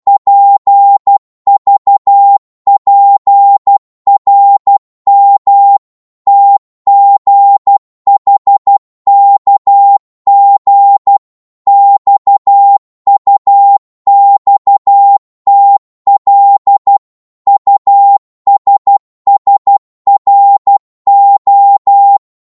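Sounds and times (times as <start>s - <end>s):
Morse code at 12 wpm: 0.1s - 22.0s.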